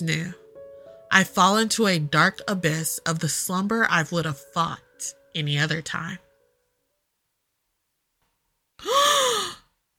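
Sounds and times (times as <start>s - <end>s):
speech: 0.0s - 0.4s, 1.2s - 6.2s
sharp gasp for breath on waking: 8.8s - 9.7s.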